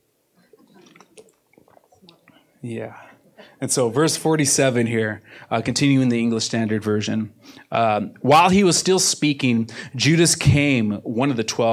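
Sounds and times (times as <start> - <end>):
gulps and swallowing: 0.4 - 3.6
person sipping water from a bottle: 0.4 - 3.6
speech: 2.6 - 11.7.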